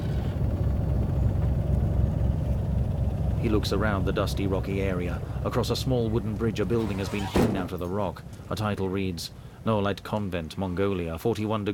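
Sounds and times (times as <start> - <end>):
helicopter engine and rotor drone flying away over dusty ground: 0.0 - 6.5
speech: 3.4 - 11.7.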